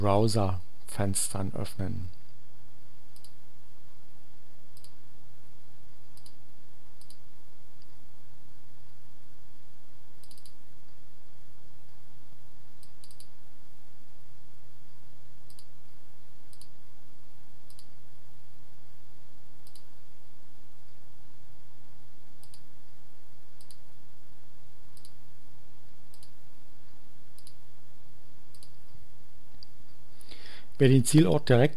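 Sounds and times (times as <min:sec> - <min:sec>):
speech: 0:00.0 - 0:02.2, 0:30.8 - 0:31.7
steady low electrical hum: 0:00.0 - 0:31.7
computer mouse clicking through settings menus: 0:03.1 - 0:03.4, 0:04.7 - 0:05.0, 0:06.1 - 0:06.4, 0:07.0 - 0:07.2, 0:10.2 - 0:10.6, 0:12.8 - 0:13.4, 0:15.4 - 0:15.7, 0:16.5 - 0:16.8, 0:17.6 - 0:17.9, 0:19.6 - 0:19.9, 0:22.4 - 0:22.7, 0:23.6 - 0:23.9, 0:24.9 - 0:25.2, 0:26.1 - 0:26.4, 0:27.4 - 0:27.6, 0:28.5 - 0:29.0.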